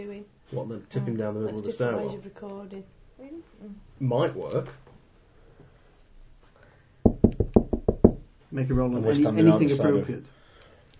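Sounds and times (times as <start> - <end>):
speech: 0.0 - 4.8, 8.5 - 10.4
firm hollow knocks on an apartment door: 7.0 - 8.9.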